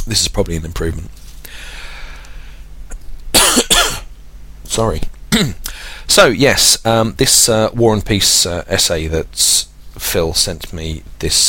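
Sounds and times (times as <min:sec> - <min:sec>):
speech: 0:00.1 - 0:01.8, 0:04.8 - 0:11.4
person with a croaky, irritated throat coughing: 0:03.3 - 0:04.1, 0:05.3 - 0:05.7.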